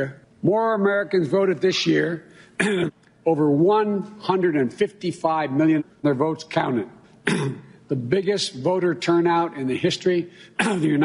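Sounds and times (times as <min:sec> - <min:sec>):
speech: 0:00.0 - 0:11.0
man clearing his throat: 0:02.6 - 0:03.0, 0:07.2 - 0:07.8, 0:10.6 - 0:11.0.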